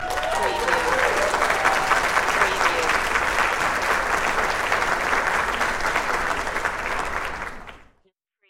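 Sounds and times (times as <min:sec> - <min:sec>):
large crowd applause: 0:00.0 - 0:07.9.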